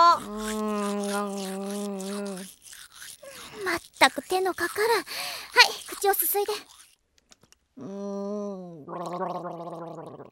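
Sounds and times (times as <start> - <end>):
person humming a sustained steady note: 0.0 - 2.5, 7.8 - 10.3
toothbrush scrubbing teeth in quick rhythmic strokes: 0.0 - 7.6
speech: 4.0 - 6.8, 7.8 - 10.3.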